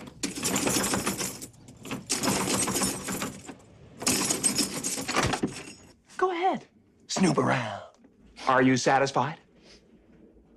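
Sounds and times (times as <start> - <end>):
metal keys rattling and jangling in a door lock: 0.0 - 6.0
speech: 6.5 - 7.8, 8.5 - 9.4.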